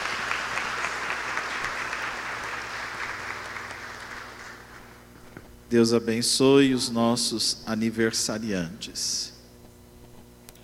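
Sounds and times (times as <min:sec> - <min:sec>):
congregation applauding: 0:00.0 - 0:05.0
speech: 0:05.7 - 0:09.4.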